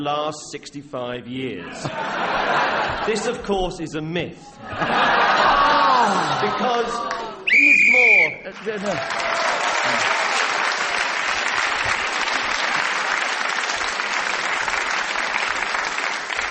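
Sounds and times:
speech: 0:00.0 - 0:05.2, 0:06.0 - 0:07.4, 0:08.5 - 0:10.2
laughter: 0:01.6 - 0:03.5, 0:04.6 - 0:10.4, 0:11.7 - 0:13.3
dense applause from a large audience: 0:04.9 - 0:16.4
whistle-like tone: 0:07.5 - 0:08.5.

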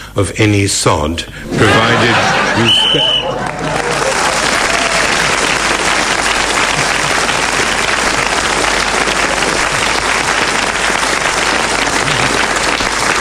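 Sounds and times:
speech: 0:00.2 - 0:03.8
laughter: 0:01.5 - 0:05.3, 0:11.8 - 0:12.8
studio audience applause: 0:01.6 - 0:13.1.

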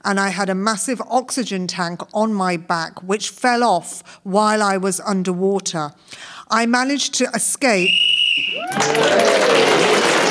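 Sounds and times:
speech: 0:00.0 - 0:10.0
audience applauding: 0:08.4 - 0:10.2.

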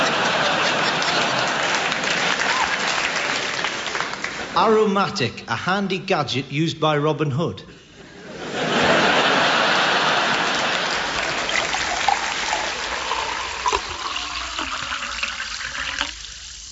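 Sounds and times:
laughter: 0:00.0 - 0:04.9, 0:08.0 - 0:13.2
speech: 0:04.6 - 0:07.7
spring water trickling and splashing: 0:10.9 - 0:16.6.

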